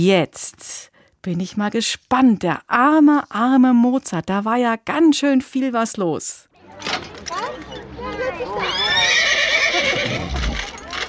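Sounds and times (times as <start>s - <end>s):
speech: 0.0s - 10.6s
horses neighing: 8.2s - 10.8s.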